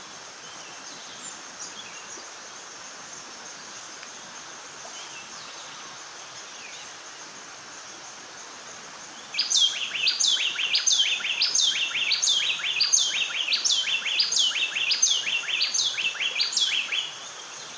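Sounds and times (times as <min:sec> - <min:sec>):
bay wren Cantorchilus nigricapillus singing: 0:09.2 - 0:17.2.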